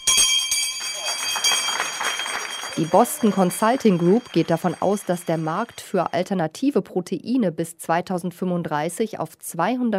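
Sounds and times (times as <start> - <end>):
stock exchange bell ringing at a market debut: 0.0 - 6.3
speech: 2.8 - 9.9.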